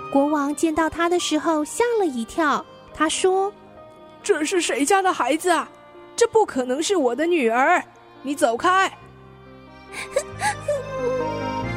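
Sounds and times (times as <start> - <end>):
speech: 0.1 - 3.6, 4.2 - 9.0, 9.9 - 11.3
princess sobbing and crying sadly: 9.9 - 11.7.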